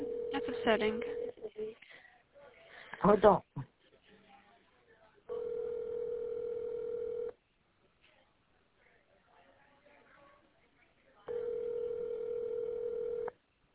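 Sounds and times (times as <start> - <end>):
telephone ringback tone of an unanswered call: 0.0 - 1.3, 5.3 - 7.3, 11.3 - 13.3
faint murmur: 0.0 - 13.7
speech: 0.6 - 1.2, 3.0 - 3.5.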